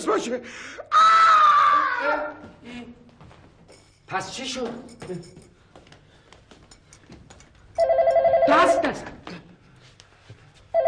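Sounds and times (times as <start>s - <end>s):
speech: 0.0s - 1.1s, 2.0s - 3.1s, 4.1s - 5.5s, 8.5s - 9.2s
telephone ringing unanswered: 7.8s - 9.0s.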